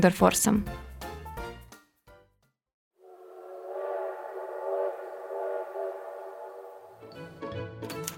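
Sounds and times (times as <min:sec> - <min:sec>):
speech: 0:00.0 - 0:00.9
long steady train whistle blast: 0:03.0 - 0:07.4.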